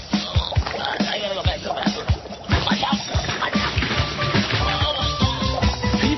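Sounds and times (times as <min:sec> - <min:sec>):
stomach bubbling and gurgling: 0:00.0 - 0:06.0.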